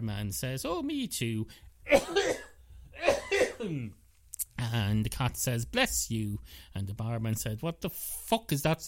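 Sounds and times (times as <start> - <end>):
speech: 0.0 - 2.5, 3.6 - 4.0, 4.6 - 8.8
person coughing: 1.9 - 4.0.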